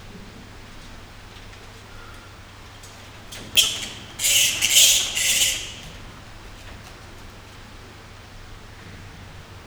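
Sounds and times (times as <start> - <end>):
Indian flying fox calling at the Nyiregyhaza zoo: 2.8 - 6.4.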